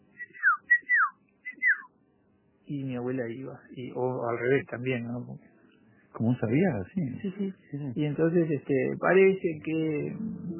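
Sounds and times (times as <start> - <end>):
person whistling a traditional family signal whistle: 0.2 - 1.9
speech: 2.7 - 5.5, 6.2 - 10.5.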